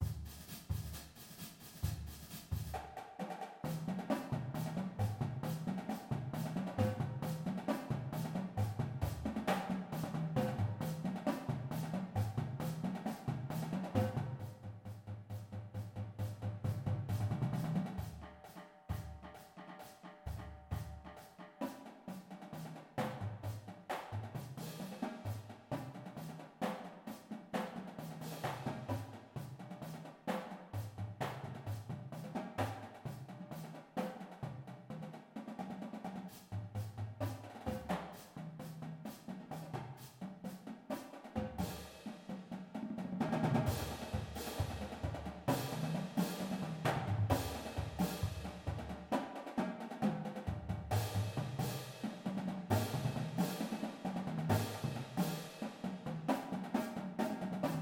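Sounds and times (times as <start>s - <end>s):
full drumline: 0.0s - 57.8s.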